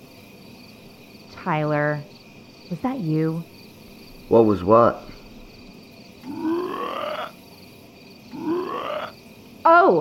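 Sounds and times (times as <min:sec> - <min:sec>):
speech: 0:01.4 - 0:03.5, 0:04.3 - 0:05.1
frog croaking inside an apartment: 0:06.2 - 0:07.6, 0:08.2 - 0:09.2.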